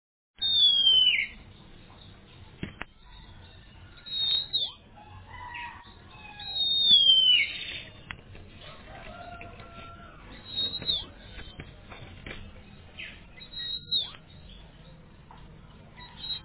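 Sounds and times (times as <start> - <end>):
Oriental magpie-robin song of sweet descending whistles and harsher notes: 0.4 - 8.2, 10.3 - 11.6, 12.6 - 15.0, 16.0 - 16.4.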